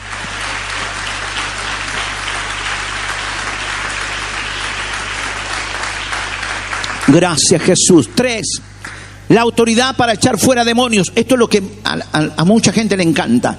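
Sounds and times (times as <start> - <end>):
audience at a Christian worship service applauding: 0.0 - 9.0
speech: 7.1 - 13.5.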